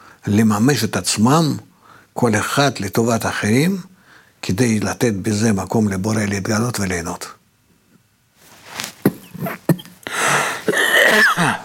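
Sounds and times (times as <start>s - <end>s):
speech: 0.2s - 7.4s, 11.1s - 11.6s
person sneezing: 8.8s - 11.6s.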